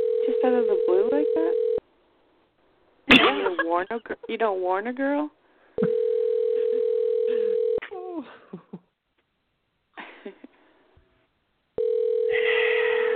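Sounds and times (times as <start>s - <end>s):
telephone dial tone while placing a call: 0.0s - 1.8s, 5.9s - 7.8s, 11.8s - 13.1s
speech: 0.4s - 1.7s, 3.1s - 5.4s, 8.2s - 8.6s.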